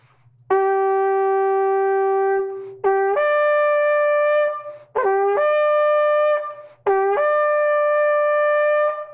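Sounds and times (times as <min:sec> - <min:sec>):
kosher shofar made from kudu horn blown: 0:00.5 - 0:09.1.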